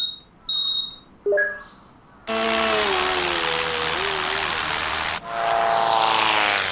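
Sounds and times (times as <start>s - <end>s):
short electronic beeps: 0.0s - 1.8s
drone propellers whirring buzz: 2.3s - 6.7s.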